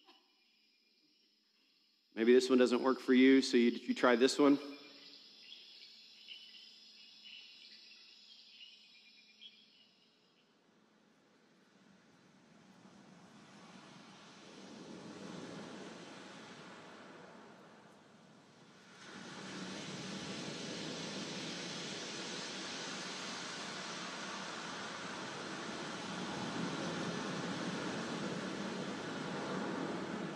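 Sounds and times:
crickets buzzing in a humid jungle: 0.0s - 10.5s, 18.9s - 30.3s
speech: 2.2s - 4.8s
steady broadband hiss of colored noise: 2.2s - 30.3s.

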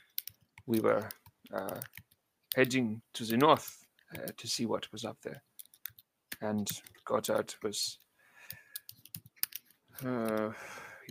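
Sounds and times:
rapid computer keyboard typing: 0.0s - 4.5s, 5.6s - 7.6s, 8.4s - 10.5s
speech: 0.7s - 5.5s, 6.4s - 8.0s, 10.0s - 11.0s.

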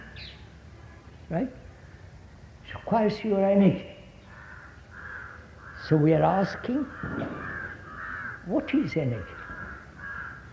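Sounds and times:
low steady rumble: 0.0s - 10.5s
speech: 1.3s - 1.7s, 2.7s - 3.9s, 5.9s - 7.5s, 8.5s - 9.4s
crow cawing: 4.1s - 10.5s.

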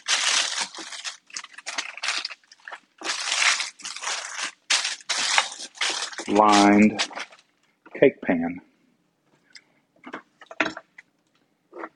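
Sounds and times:
parchment paper rustling and crunching: 0.0s - 7.5s
speech: 6.3s - 7.1s, 8.0s - 8.7s.

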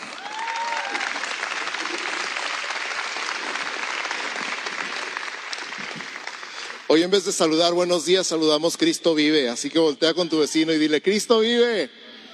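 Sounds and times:
faint cheers: 0.0s - 2.7s
audience at a church service applauding loudly: 0.0s - 7.5s
speech: 6.9s - 12.0s.

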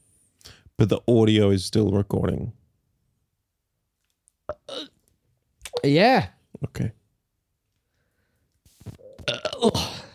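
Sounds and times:
speech: 0.8s - 2.6s, 5.8s - 7.0s
long loud human burp: 4.5s - 5.0s, 9.0s - 10.1s.

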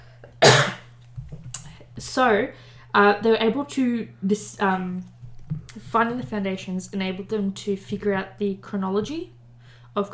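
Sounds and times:
low steady hum: 0.0s - 10.1s
sharp cough: 0.4s - 0.8s
speech: 2.0s - 5.1s, 5.8s - 9.4s, 10.0s - 10.1s.

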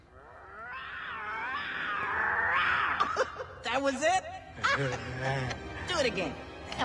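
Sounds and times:
young lion cub's thin high-pitched roar: 0.0s - 3.4s
speech: 3.8s - 6.8s.

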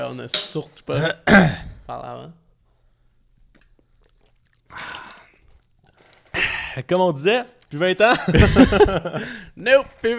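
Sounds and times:
speech: 0.0s - 2.4s, 6.8s - 10.1s
sipping a drink: 3.5s - 6.8s
laughter: 8.1s - 9.5s.

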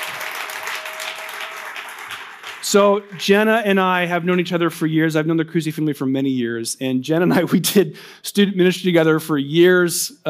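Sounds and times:
audience applauding: 0.0s - 3.8s
speech: 2.6s - 10.2s.

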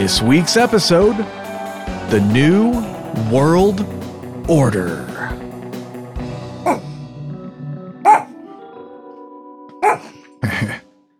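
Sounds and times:
speech: 0.0s - 1.5s, 2.1s - 5.1s
dog barking: 6.6s - 7.0s, 8.0s - 8.4s, 9.7s - 10.3s.

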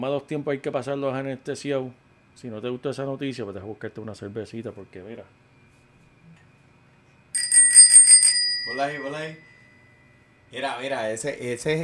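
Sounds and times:
speech: 0.0s - 5.5s, 8.7s - 9.5s, 10.5s - 11.8s
bicycle-style bell on a beer glass ringing: 7.4s - 9.4s.

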